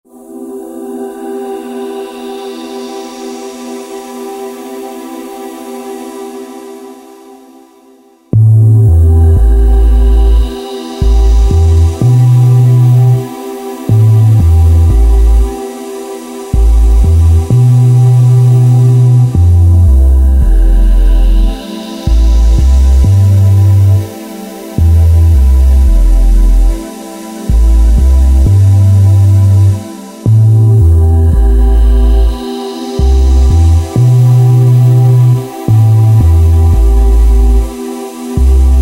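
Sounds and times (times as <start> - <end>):
synth pad on a Korg TR-Rack: 0.1 - 38.8
deep synth bass on a Korg TR-Rack: 8.4 - 15.7, 16.4 - 38.8.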